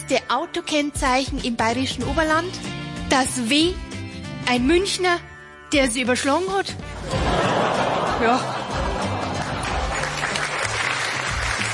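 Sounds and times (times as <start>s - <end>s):
speech: 0.1s - 8.6s
laughter: 7.0s - 11.0s
audience applause: 8.6s - 11.7s.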